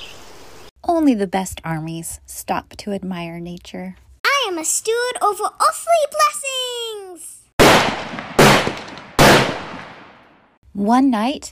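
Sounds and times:
speech: 1.0s - 7.3s, 10.8s - 11.5s
gunshots fired near a camp: 7.6s - 10.4s.

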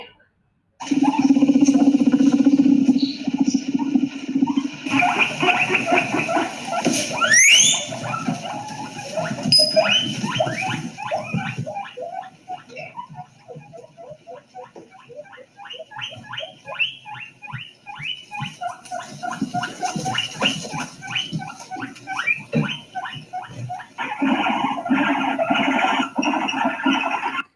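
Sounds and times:
guinea pig chirping and squeaking: 0.8s - 27.5s.

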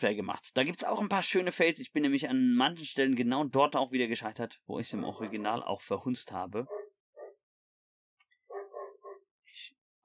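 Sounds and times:
speech: 0.0s - 6.8s
dog barking and yelping: 5.1s - 5.6s, 6.7s - 7.4s, 8.5s - 9.3s.

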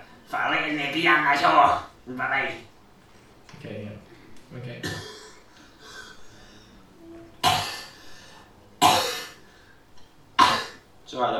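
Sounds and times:
speech: 0.3s - 2.7s, 3.5s - 5.1s, 11.1s - 11.3s
harsh coughs: 4.8s - 6.0s, 7.4s - 8.0s, 8.8s - 9.4s, 10.4s - 10.8s
quiet breathy sounds: 5.1s - 10.0s.

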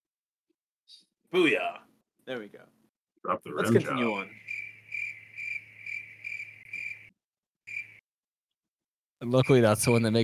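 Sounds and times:
speech: 1.3s - 4.5s, 9.2s - 10.2s
crickets chirping: 4.0s - 7.1s, 7.7s - 8.0s.

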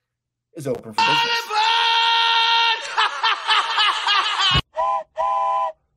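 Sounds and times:
speech: 0.6s - 1.6s
laughter: 2.7s - 4.6s
train whistle: 4.8s - 5.8s.

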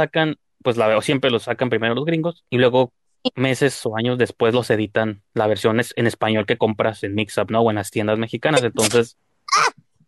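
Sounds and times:
speech: 0.0s - 9.8s
person sneezing: 8.6s - 9.7s.

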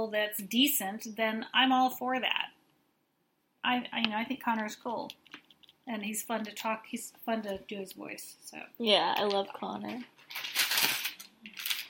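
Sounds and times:
speech: 0.0s - 2.5s, 3.6s - 5.2s, 5.9s - 10.9s
crinkly paper rustling: 9.2s - 11.8s.

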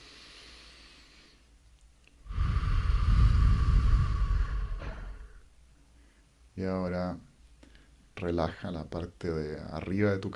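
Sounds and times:
long deep breath close to the microphone: 0.0s - 1.5s, 2.2s - 6.4s, 7.6s - 8.0s
speech: 6.6s - 7.3s, 8.2s - 10.3s.

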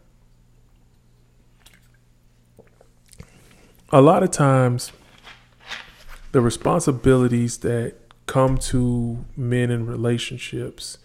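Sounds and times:
low steady hum: 0.0s - 11.0s
person drinking water: 0.8s - 3.9s
wet swallows: 1.5s - 3.9s
speech: 3.9s - 5.0s, 6.3s - 11.0s.

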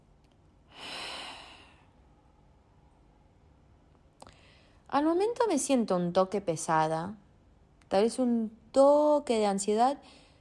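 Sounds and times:
hiss: 0.0s - 10.3s
person taking a deep breath: 0.7s - 1.9s
speech: 4.9s - 7.2s, 7.9s - 10.2s.

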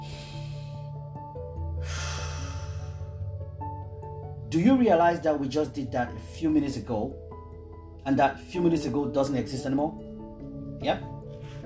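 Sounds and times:
deep breath during a guided mindfulness exercise: 0.0s - 1.1s, 1.7s - 3.4s, 11.3s - 11.6s
soft sustained musical tones: 0.0s - 11.6s
speech: 4.5s - 7.2s, 8.0s - 10.0s, 10.8s - 11.1s.

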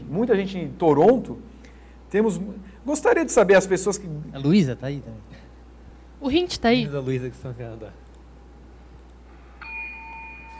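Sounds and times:
faint hum: 0.0s - 10.5s
speech: 0.1s - 1.5s, 2.1s - 5.4s, 6.2s - 8.0s
small bell ringing: 9.6s - 10.5s.

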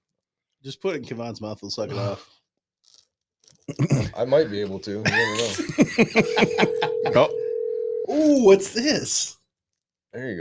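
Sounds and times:
speech: 0.6s - 3.0s, 3.7s - 7.4s, 8.2s - 9.4s, 10.1s - 10.3s
laughter: 5.0s - 7.3s
voices chattering: 6.2s - 7.5s
phone ringing with a steady electronic tone: 6.2s - 8.3s.

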